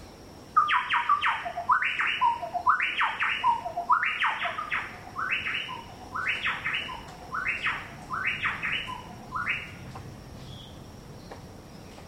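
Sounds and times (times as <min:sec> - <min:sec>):
chowchilla Orthonyx spaldingii calls: 0:00.6 - 0:09.9.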